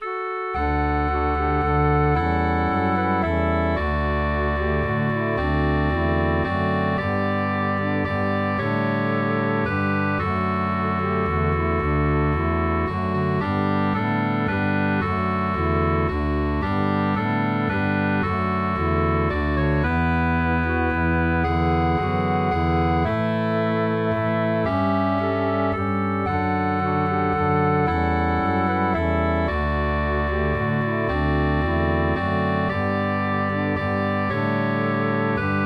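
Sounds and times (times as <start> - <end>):
bass line: 0.0 - 35.6
melody: 0.0 - 35.6.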